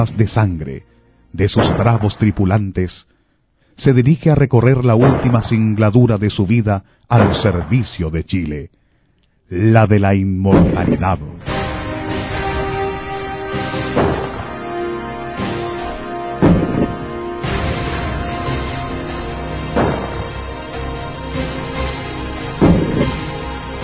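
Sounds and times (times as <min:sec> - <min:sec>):
speech: 0:00.0 - 0:03.1, 0:03.8 - 0:08.8, 0:09.5 - 0:11.6
heavy naval cannon blasts from a warship: 0:01.5 - 0:02.6, 0:04.8 - 0:06.3, 0:07.1 - 0:08.1, 0:10.5 - 0:20.9, 0:22.4 - 0:23.8
dramatic musical bed: 0:10.6 - 0:23.8.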